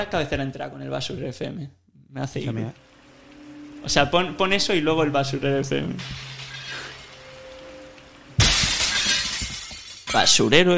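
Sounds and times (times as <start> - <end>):
speech: 0.0 - 2.9, 3.8 - 6.4, 10.1 - 10.7
quiet low hum: 2.3 - 10.2
faint steady tone: 2.4 - 9.8
bright scatter of tinkling glass shards: 6.0 - 10.4
glass shattering in one loud crash: 6.0 - 10.5.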